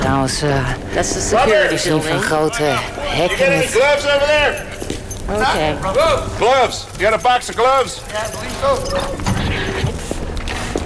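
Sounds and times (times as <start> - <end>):
speech: 0.1 - 9.3
footsteps of people walking toward a chapel in a prison compound: 4.3 - 10.8.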